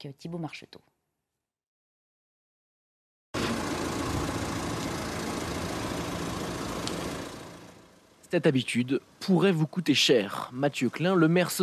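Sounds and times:
speech: 0.0 - 0.9, 8.3 - 11.6
parked car engine idling: 3.4 - 9.5.

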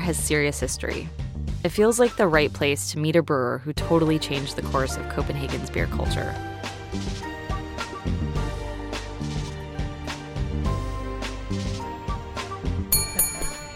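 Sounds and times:
speech: 0.0 - 7.2
steady music in a bar: 0.0 - 13.7
small bright service bell rung at a bar: 12.9 - 13.7.

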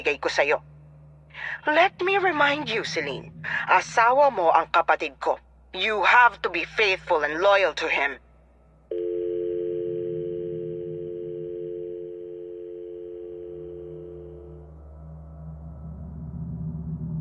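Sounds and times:
speech: 0.0 - 0.7, 1.4 - 8.2
low rumble: 0.0 - 17.2
telephone dial tone: 8.9 - 14.6.

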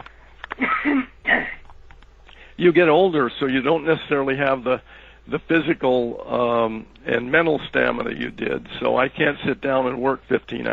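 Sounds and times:
person clearing throat in mid-conversation: 0.6 - 1.6
faint breathy sounds: 2.3 - 2.6, 4.8 - 5.3
speech: 2.6 - 10.7.

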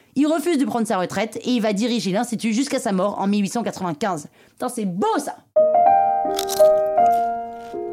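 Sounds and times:
speech: 0.2 - 7.8
crunch of a bite into crispy food: 6.3 - 7.8.

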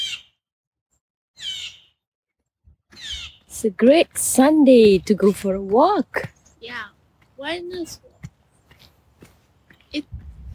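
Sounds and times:
birds calling from the trees with harsh raspy squawks: 0.0 - 0.4, 1.4 - 2.0, 2.9 - 3.5
speech: 3.6 - 8.1, 9.9 - 10.2.

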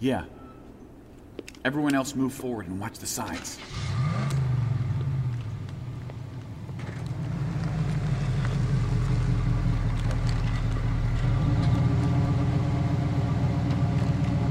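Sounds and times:
speech: 0.0 - 0.4, 1.6 - 3.9
car engine idling: 3.6 - 14.4.

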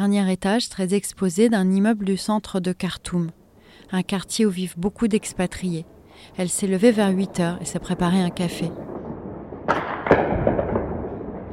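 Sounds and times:
speech: 0.0 - 8.9
rumbling tail echoing through a city: 5.2 - 11.5
explosive blasts from a strike in a city: 7.6 - 11.5.

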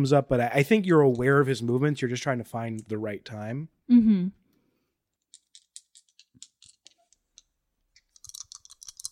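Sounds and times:
speech: 0.0 - 4.4
dice rolling across a hard surface: 5.2 - 9.1.

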